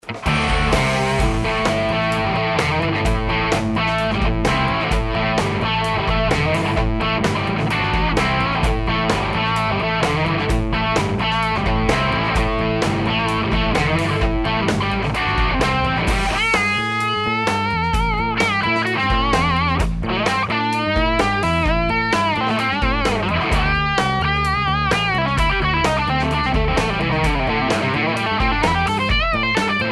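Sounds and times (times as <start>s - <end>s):
high-gain electric guitar on bridge pickup: 0.0s - 29.9s.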